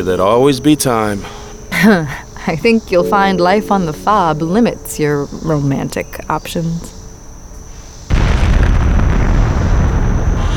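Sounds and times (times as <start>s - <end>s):
speech: 0.0s - 6.9s
explosion at a forward operating base: 8.1s - 10.5s
pillar of fire roaring beyond a barricade wall: 8.1s - 10.5s.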